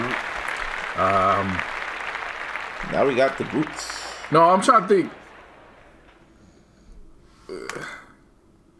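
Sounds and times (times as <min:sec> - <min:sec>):
applause: 0:00.0 - 0:06.3
speech: 0:01.0 - 0:01.8, 0:02.8 - 0:05.2.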